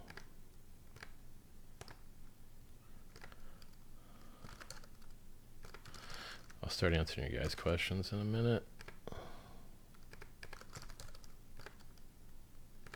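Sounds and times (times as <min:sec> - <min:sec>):
typing on a computer keyboard: 0:00.0 - 0:00.3, 0:00.9 - 0:01.2, 0:01.8 - 0:02.1, 0:03.1 - 0:06.6, 0:07.4 - 0:07.7, 0:08.8 - 0:09.2, 0:09.9 - 0:12.1
low hum: 0:00.0 - 0:12.9
speech: 0:06.7 - 0:08.8.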